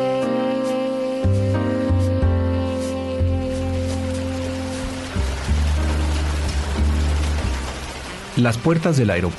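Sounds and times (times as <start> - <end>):
sustained droning musical tones: 0.2 - 9.3
light drizzling rain falling over a city: 2.7 - 9.3
speech: 8.4 - 9.3.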